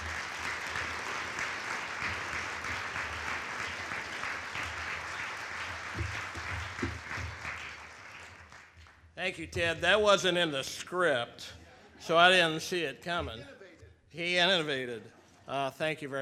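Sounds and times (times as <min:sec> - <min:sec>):
audience applause: 0:00.0 - 0:09.0
speech: 0:09.2 - 0:13.6, 0:14.2 - 0:16.2.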